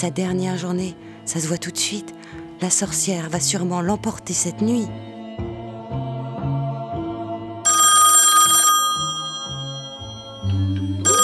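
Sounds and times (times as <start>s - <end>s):
speech: 0.0s - 5.2s
bouncy rhythmic low musical line: 0.0s - 11.2s
loud bright telephone bell ringing: 7.7s - 10.4s, 11.1s - 11.2s.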